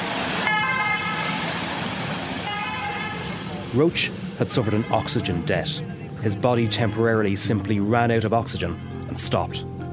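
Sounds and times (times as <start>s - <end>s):
road traffic noise: 0.0s - 9.9s
two-tone ambulance klaxon siren: 0.4s - 1.7s, 2.4s - 3.4s
speech: 3.7s - 9.8s.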